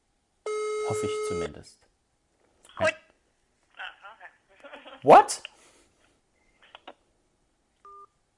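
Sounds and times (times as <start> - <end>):
ringback tone of outgoing landline call heard through phone line: 0.5 - 1.4, 7.9 - 8.1
speech: 0.9 - 1.9, 2.8 - 3.0, 5.0 - 5.5.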